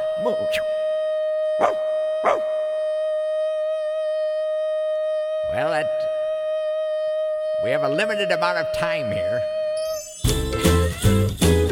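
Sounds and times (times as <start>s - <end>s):
sustained musical tone: 0.0s - 10.6s
speech: 0.2s - 0.8s, 1.6s - 2.5s, 7.6s - 9.6s
dog howling: 1.6s - 2.6s.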